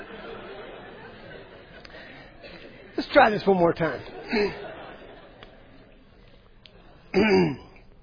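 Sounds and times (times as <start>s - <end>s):
laughter: 0.0s - 7.1s
speech: 3.0s - 4.6s
rough cough after a drink went down the wrong way: 7.1s - 7.8s.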